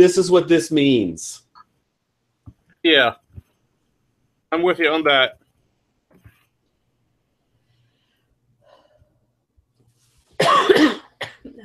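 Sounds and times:
speech: 0:00.0 - 0:01.4, 0:02.8 - 0:03.2, 0:04.5 - 0:05.4
single harsh throaty cough: 0:10.4 - 0:11.6.

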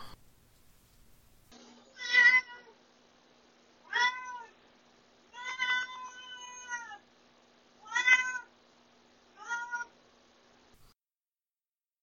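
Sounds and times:
cat meowing: 0:01.9 - 0:02.8, 0:03.9 - 0:04.6, 0:05.3 - 0:07.0, 0:07.8 - 0:08.5, 0:09.4 - 0:09.9.

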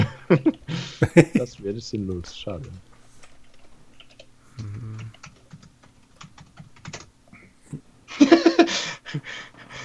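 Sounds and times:
laughter: 0:00.0 - 0:01.6, 0:08.1 - 0:09.5
low buzzing hum: 0:00.0 - 0:09.8
speech: 0:00.3 - 0:02.9, 0:04.6 - 0:05.2
typing on a computer keyboard: 0:02.6 - 0:07.1.

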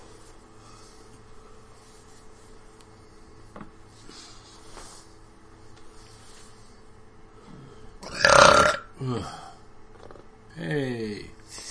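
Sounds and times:
quieter drawn-out belch: 0:08.0 - 0:08.9
loud guttural burps: 0:08.0 - 0:09.2.

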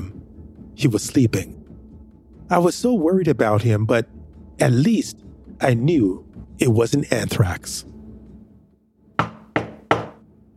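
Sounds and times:
speech: 0:00.8 - 0:01.6, 0:02.5 - 0:07.9
heavy knocks on a door: 0:09.2 - 0:10.2.

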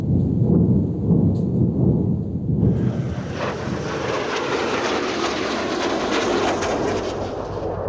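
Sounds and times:
low heavy rumble: 0:00.0 - 0:07.8
air defense missiles launching during an air raid: 0:02.6 - 0:07.8.

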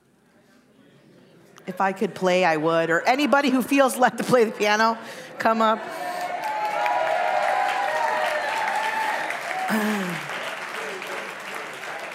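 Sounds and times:
speech: 0:01.7 - 0:06.0, 0:09.7 - 0:10.2
audience clapping at a worship service: 0:06.0 - 0:12.1.

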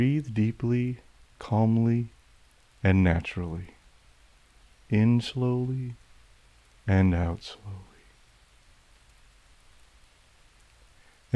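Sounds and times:
speech: 0:00.0 - 0:02.2, 0:02.8 - 0:03.8, 0:04.9 - 0:06.0, 0:06.9 - 0:07.9
gentle rain falling: 0:00.0 - 0:11.3.

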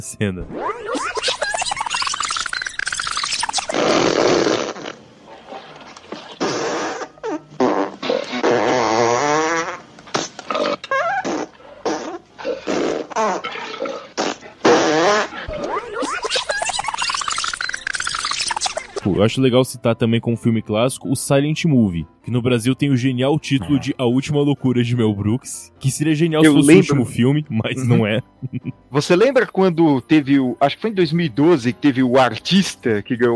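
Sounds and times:
speech: 0:00.0 - 0:01.4, 0:19.2 - 0:33.3
flatulence sounds from a comedy western film scene: 0:00.4 - 0:19.0, 0:23.6 - 0:24.0.

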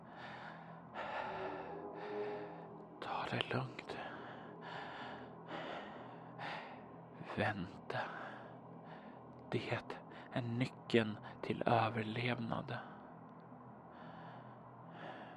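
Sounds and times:
heavy nervous breathing: 0:00.0 - 0:07.3, 0:07.9 - 0:09.4, 0:12.8 - 0:15.3
speech: 0:03.3 - 0:03.9, 0:07.4 - 0:08.1, 0:09.5 - 0:12.9.

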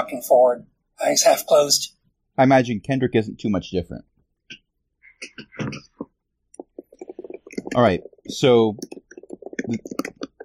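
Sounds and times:
speech: 0:00.0 - 0:04.6, 0:05.2 - 0:05.9, 0:07.7 - 0:09.0, 0:09.7 - 0:10.1
frantic typing on a computer keyboard: 0:06.6 - 0:10.4.

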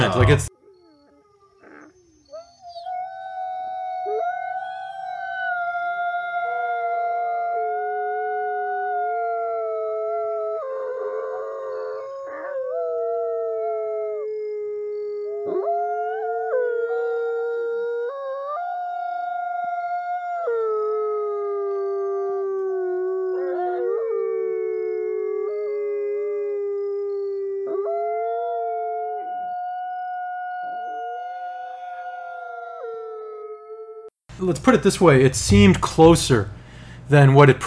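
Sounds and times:
speech: 0:00.0 - 0:00.5, 0:34.5 - 0:37.6
wolves howling: 0:00.0 - 0:34.1.

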